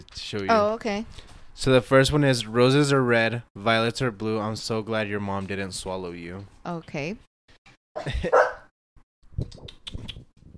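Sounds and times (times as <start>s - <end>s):
speech: 0.0s - 7.3s, 8.0s - 8.6s
puppies barking in sharp high yips: 8.3s - 8.7s.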